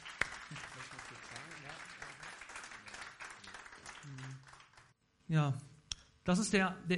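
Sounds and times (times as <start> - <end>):
room full of people applauding: 0.0 - 5.0
speech: 5.3 - 5.7, 6.3 - 6.9.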